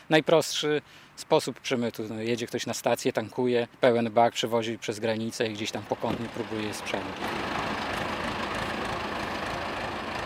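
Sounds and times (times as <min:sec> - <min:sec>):
speech: 0:00.1 - 0:07.5
tractor engine idling: 0:05.5 - 0:10.2.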